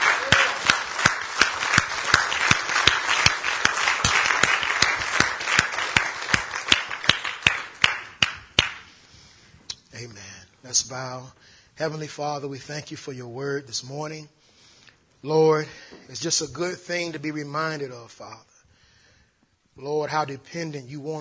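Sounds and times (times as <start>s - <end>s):
crowd clapping in a steady rhythm: 0.0s - 9.0s
speech: 10.7s - 14.4s, 15.2s - 18.5s, 19.8s - 21.1s.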